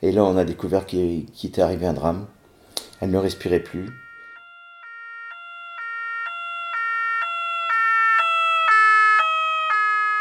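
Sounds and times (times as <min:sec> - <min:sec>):
speech: 0:00.0 - 0:02.4, 0:03.0 - 0:04.0
two-tone emergency vehicle siren: 0:02.9 - 0:10.1.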